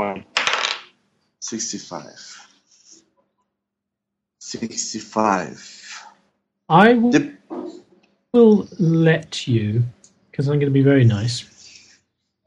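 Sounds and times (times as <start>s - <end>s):
dice clattering and tumbling across a tabletop: 0.4s - 0.9s
speech: 1.4s - 2.5s, 4.4s - 6.1s, 6.7s - 11.5s.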